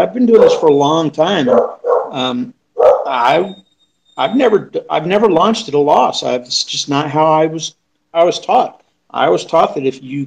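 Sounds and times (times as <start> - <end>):
speech: 0.0 - 3.6, 4.2 - 10.2
dog barking with a yelping whiny edge: 0.3 - 0.8, 1.4 - 2.2, 2.8 - 3.4.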